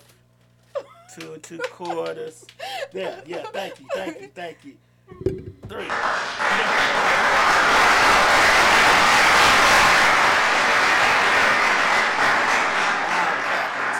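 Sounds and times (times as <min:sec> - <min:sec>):
laughter: 0:00.7 - 0:04.7, 0:05.7 - 0:08.9, 0:11.1 - 0:13.9
speech: 0:01.2 - 0:07.0
large crowd applauding: 0:05.7 - 0:13.9.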